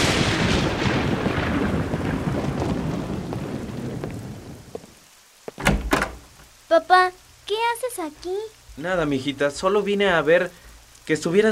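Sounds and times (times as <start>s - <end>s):
rolling thunder: 0.0s - 5.0s
heavy rain: 0.0s - 11.4s
speech: 6.7s - 11.4s.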